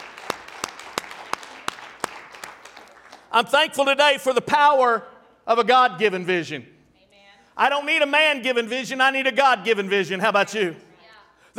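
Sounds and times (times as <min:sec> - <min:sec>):
softer scattered applause: 0:00.0 - 0:03.4
crowd clapping in rhythm: 0:00.0 - 0:03.6
speech: 0:03.3 - 0:06.7, 0:07.6 - 0:10.9.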